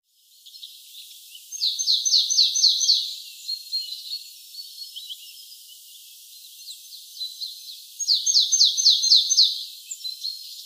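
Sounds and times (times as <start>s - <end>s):
Poecile palustris calling: 1.5s - 4.2s, 6.6s - 10.6s.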